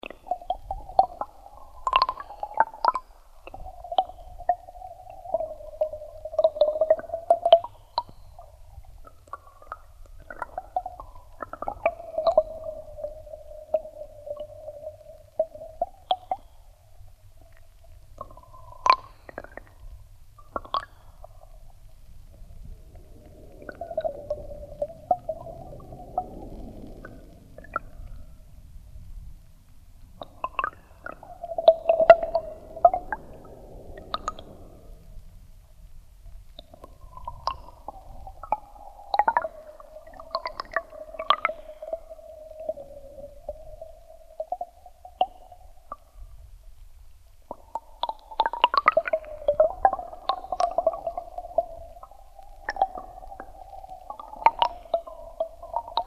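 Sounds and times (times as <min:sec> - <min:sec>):
water flowing in a channel in Oristano recorded underwater: 0:00.0 - 0:56.0.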